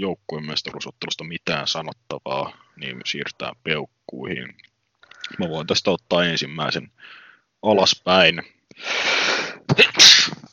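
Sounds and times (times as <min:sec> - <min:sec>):
speech: 0:00.0 - 0:10.2
sneeze with breathy inhale: 0:09.7 - 0:10.5.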